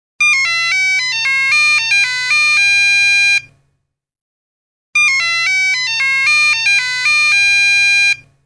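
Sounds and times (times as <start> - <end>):
mobile phone sound: 0.2 - 3.5, 5.0 - 8.3.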